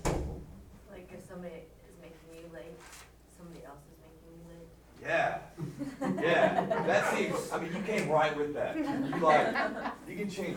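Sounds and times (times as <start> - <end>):
door shutting with a low thud: 0.0 - 0.6
speech: 2.6 - 10.5
laughter: 5.6 - 10.5.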